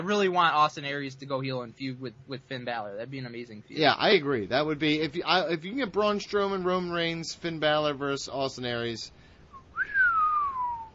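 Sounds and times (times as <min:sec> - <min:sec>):
speech: 0:00.0 - 0:09.2
person whistling: 0:09.5 - 0:10.9.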